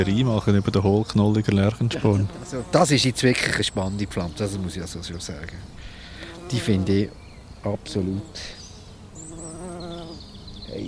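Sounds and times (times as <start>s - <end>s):
speech: 0.0s - 5.9s, 6.5s - 8.6s
faint high outdoor sounds: 0.0s - 10.8s
laughter: 1.8s - 2.5s
bumblebee buzzing among hollow-rooted corydalis plants outdoors: 2.0s - 4.9s, 5.5s - 10.8s.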